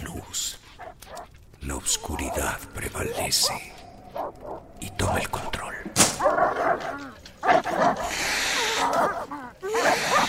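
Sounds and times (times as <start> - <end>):
several dogs barking: 0.7 - 4.8, 6.0 - 10.2
speech: 1.9 - 3.8, 4.5 - 5.5
dogs yipping and whining: 2.0 - 4.6, 6.2 - 10.2.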